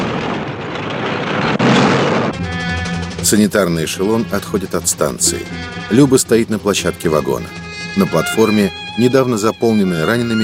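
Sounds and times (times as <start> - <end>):
loud explosion of a burning tank in a war film scene: 0.0 - 3.2
dense rumbling blast of a burning German tank: 0.0 - 5.8
speech: 3.3 - 10.4.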